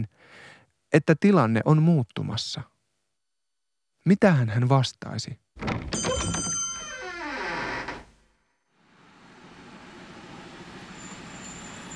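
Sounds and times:
speech: 0:00.0 - 0:02.7, 0:04.0 - 0:05.9
train rumbling past at a railway station: 0:09.2 - 0:11.9
descending squealing tone from train wheels: 0:10.5 - 0:11.9.

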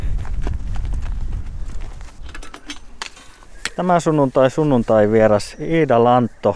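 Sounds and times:
horse hooves clip-clopping on a hard floor: 0:00.0 - 0:05.0
speech: 0:03.8 - 0:06.5.

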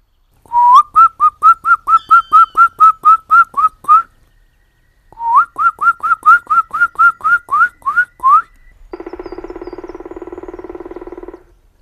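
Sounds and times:
person whistling imitation of a black woodpecker call: 0:00.5 - 0:04.1, 0:05.2 - 0:08.6.

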